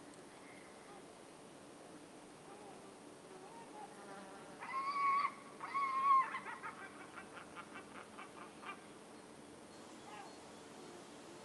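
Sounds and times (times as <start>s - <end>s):
faint background hiss: 0.0s - 11.4s
gull calls in a countryside forest: 4.6s - 8.9s.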